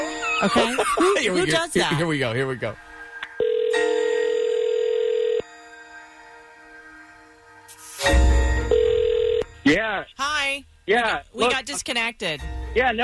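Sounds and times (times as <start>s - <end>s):
laughter: 0.1s - 1.6s
speech: 0.4s - 2.8s, 9.7s - 13.0s
electronic telephone ringback tones on an outgoing call: 3.4s - 5.5s, 8.6s - 9.6s.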